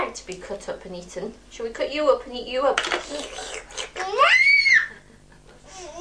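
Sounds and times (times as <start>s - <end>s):
speech: 0.1s - 3.7s
young child screaming: 4.1s - 5.0s.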